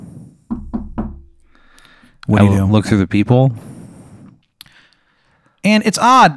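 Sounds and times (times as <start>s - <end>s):
firm knocks on a wooden door: 0.5s - 1.6s
speech: 2.3s - 3.7s, 5.6s - 6.3s.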